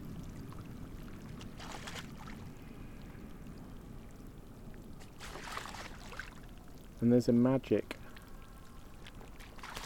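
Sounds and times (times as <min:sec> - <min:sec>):
gentoo penguins splashing through water in Antarctica: 0:00.0 - 0:02.8, 0:05.0 - 0:06.8, 0:08.0 - 0:09.8
moving water in Antarctica: 0:00.0 - 0:09.8
wind in Antarctica: 0:00.0 - 0:09.8
speech: 0:07.0 - 0:08.0.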